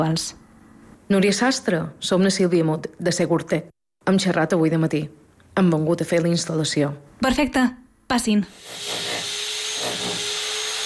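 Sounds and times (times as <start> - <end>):
speech: 0.0 - 0.4, 1.1 - 9.2
power drill whirring with a high whine during security camera installation: 8.5 - 10.8.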